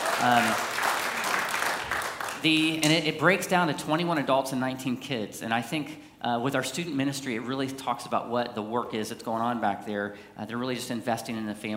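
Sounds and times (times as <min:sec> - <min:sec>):
church congregation clapping: 0:00.0 - 0:03.0
speech: 0:00.2 - 0:00.7, 0:02.4 - 0:11.7.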